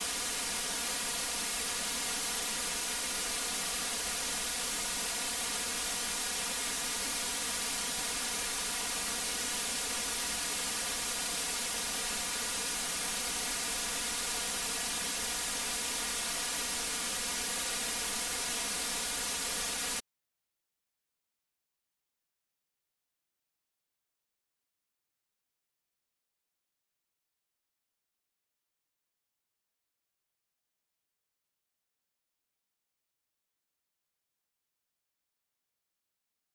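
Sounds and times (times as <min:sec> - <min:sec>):
noise identical in both channels with one channel delayed: 0:00.0 - 0:20.0.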